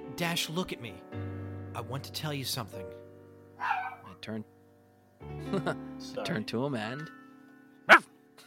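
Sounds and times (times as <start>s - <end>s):
speech: 0.2s - 3.0s, 4.2s - 4.6s, 5.2s - 7.2s
dog barking: 3.6s - 4.2s, 7.9s - 8.1s.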